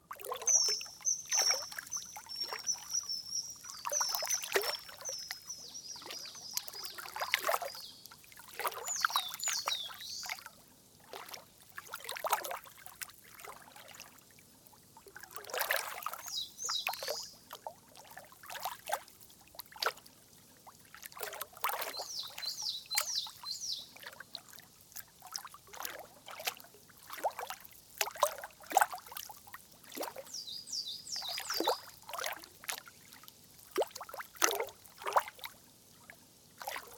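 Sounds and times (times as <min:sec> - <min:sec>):
pond ambience: 0:00.0 - 0:36.9.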